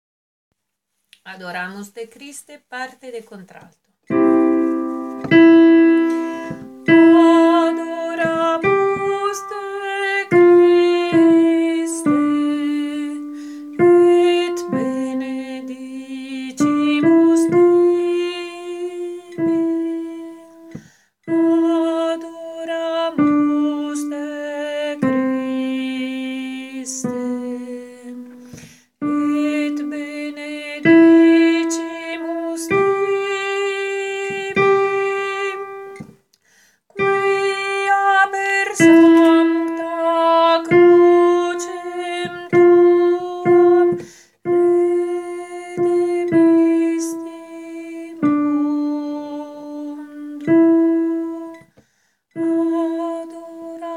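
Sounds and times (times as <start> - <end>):
alto voice singing a motet: 4.1 - 36.1, 36.9 - 51.7, 52.4 - 53.9.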